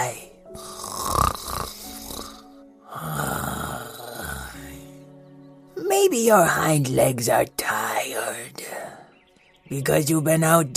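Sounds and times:
15-year-old pug taking deep snoring breaths: 0:00.6 - 0:04.9
speech: 0:06.0 - 0:07.7, 0:09.7 - 0:10.7.

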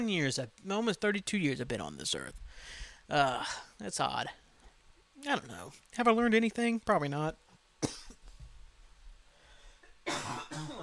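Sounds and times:
speech: 0:00.0 - 0:04.4, 0:05.2 - 0:08.0
loud harsh raspy cough: 0:07.8 - 0:08.2, 0:10.1 - 0:10.8.

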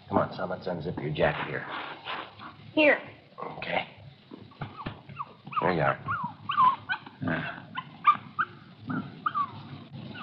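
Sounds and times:
speech: 0:00.1 - 0:02.2, 0:02.8 - 0:03.9, 0:05.6 - 0:06.2
puppy whining: 0:04.5 - 0:10.2
puppy yipping and barking: 0:04.6 - 0:08.6, 0:09.2 - 0:10.2.

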